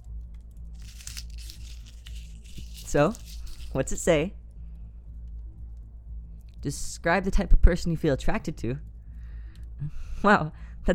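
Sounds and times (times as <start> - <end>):
low steady hum: 0.0 - 10.9
slip of paper crinkling and rustling as it is picked out of a jar: 0.8 - 3.8
speech: 2.9 - 4.4, 6.6 - 8.9, 9.8 - 10.9.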